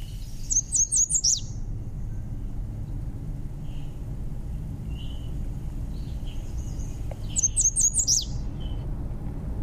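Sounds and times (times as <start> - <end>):
American Redstart singing: 0.0 - 1.6, 7.2 - 8.4
steady low outdoor rumble: 0.0 - 9.6.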